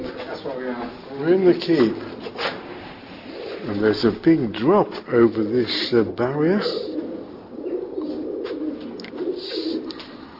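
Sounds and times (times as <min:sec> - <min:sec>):
pigeons cooing in a castle keep: 0:00.0 - 0:00.4, 0:03.0 - 0:04.2, 0:05.3 - 0:10.3
speech: 0:00.4 - 0:02.4, 0:03.6 - 0:06.9.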